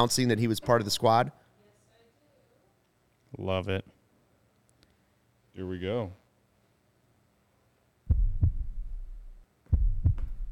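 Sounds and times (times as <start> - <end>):
speech: 0.0 - 1.4, 3.3 - 4.0, 5.6 - 6.2
deep booming heartbeat sound effect in a promotional video: 8.1 - 10.5.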